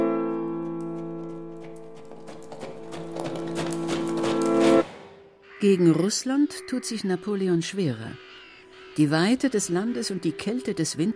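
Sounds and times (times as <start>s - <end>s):
horse hooves clip-clopping: 0.0s - 5.0s
speech: 5.6s - 8.3s, 9.0s - 11.1s.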